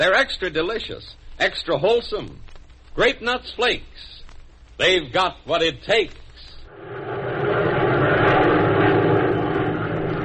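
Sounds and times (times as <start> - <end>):
speech: 0.0 - 4.2, 4.8 - 6.2
P-61 aircraft engine droning: 6.7 - 10.2.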